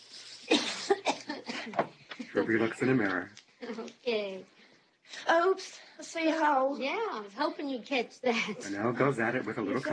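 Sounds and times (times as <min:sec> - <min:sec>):
person coughing: 0:00.5 - 0:01.8
speech: 0:02.4 - 0:09.9.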